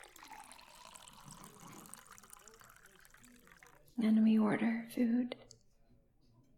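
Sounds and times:
waiter pouring water into a glass at a dinner table: 0:00.0 - 0:04.0
speech: 0:04.0 - 0:05.4.

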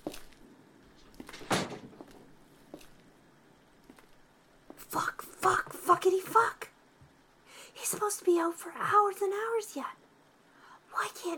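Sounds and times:
bedroom door shutting with a thump: 0:01.2 - 0:02.1
speech: 0:04.9 - 0:06.6, 0:08.0 - 0:10.0, 0:11.0 - 0:11.3.

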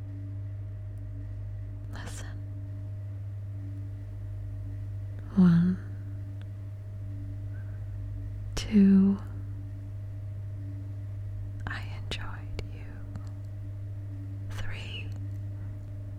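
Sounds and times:
steady low mechanical hum: 0:00.0 - 0:16.1
person whispering: 0:01.9 - 0:02.4, 0:05.2 - 0:05.9, 0:11.6 - 0:13.2, 0:14.5 - 0:15.2.

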